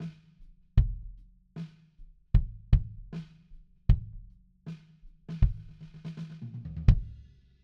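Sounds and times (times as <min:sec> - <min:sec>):
bass drum: 0:00.8 - 0:01.2, 0:02.3 - 0:04.3, 0:05.3 - 0:07.3.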